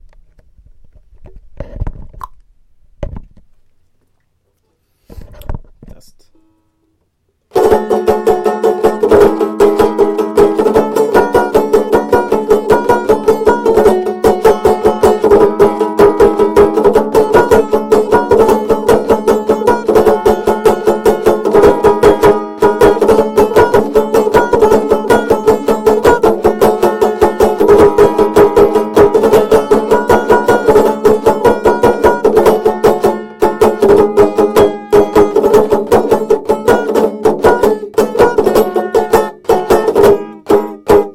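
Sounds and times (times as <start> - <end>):
banjo strumming: 7.5 - 41.1.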